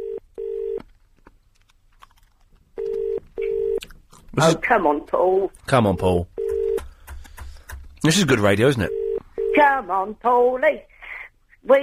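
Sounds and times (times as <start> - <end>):
telephone double-ring tone heard down the line on an unanswered call: 0.0 - 0.8, 2.8 - 3.8, 5.9 - 6.8, 8.9 - 9.7
quiet telephone line noise: 0.0 - 11.8
speech: 4.4 - 6.4, 8.0 - 9.0, 9.6 - 10.9, 11.6 - 11.8.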